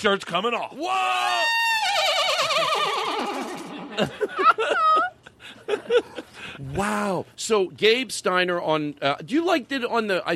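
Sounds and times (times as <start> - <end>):
speech: 0.0 - 5.1, 5.7 - 10.3
person imitating horse neigh: 1.2 - 3.9
laughter: 2.0 - 6.6.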